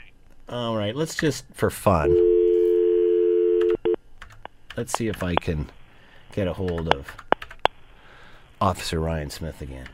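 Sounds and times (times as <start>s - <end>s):
speech: 0.5s - 2.3s, 4.8s - 7.3s, 8.6s - 9.9s
telephone dial tone: 2.1s - 4.0s.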